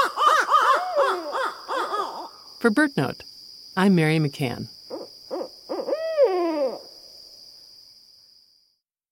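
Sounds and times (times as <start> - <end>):
pair of wild Barred Owls hooting on a still winter night: 0.0 - 2.4, 4.9 - 7.0
speech: 2.6 - 4.8.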